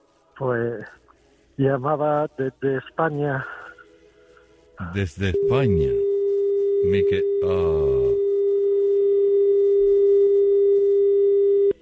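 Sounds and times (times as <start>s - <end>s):
speech: 0.4s - 1.0s, 1.6s - 3.6s, 4.8s - 6.0s, 6.8s - 8.2s
steady telephone tone after a dropped call: 5.2s - 11.8s.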